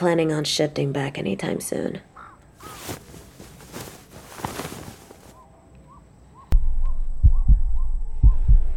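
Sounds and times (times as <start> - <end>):
speech: 0.0 - 3.0
soft rustling: 2.6 - 5.4
heartbeat in lub-dub pairs: 6.6 - 8.7.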